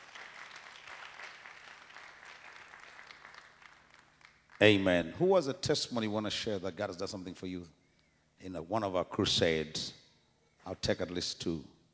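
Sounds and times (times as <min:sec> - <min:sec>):
audience applause: 0:00.0 - 0:04.8
speech: 0:04.6 - 0:07.8, 0:08.4 - 0:10.0, 0:10.6 - 0:11.7.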